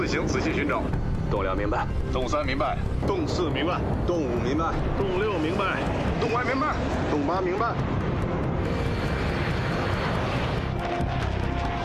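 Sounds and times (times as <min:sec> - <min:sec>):
roar of approaching aircraft engines: 0:00.0 - 0:11.8
speech: 0:00.1 - 0:08.8.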